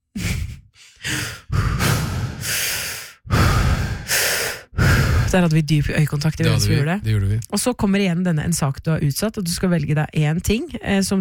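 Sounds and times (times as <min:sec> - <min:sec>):
deep audible breaths: 0:00.2 - 0:05.4
speech: 0:01.0 - 0:01.4, 0:05.3 - 0:11.1.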